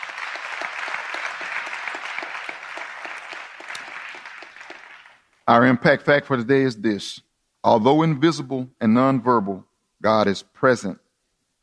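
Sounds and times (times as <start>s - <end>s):
audience clapping in praise: 0.0s - 5.3s
speech: 5.5s - 11.0s.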